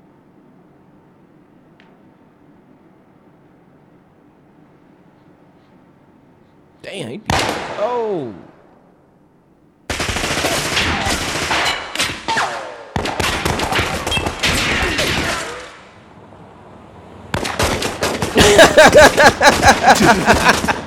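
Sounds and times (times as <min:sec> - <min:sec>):
speech: 0:06.8 - 0:08.5, 0:18.8 - 0:20.8
rapid gunfire from a Draco rifle: 0:09.9 - 0:15.7, 0:17.3 - 0:18.4
laughter: 0:18.4 - 0:20.8.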